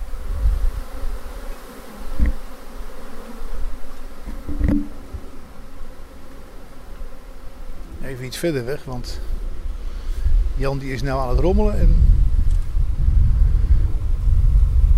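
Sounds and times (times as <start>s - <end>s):
swarm of honey bees buzzing: 0.0s - 14.9s
soft thumps: 4.3s - 5.4s
speech: 8.1s - 9.4s, 10.6s - 12.1s.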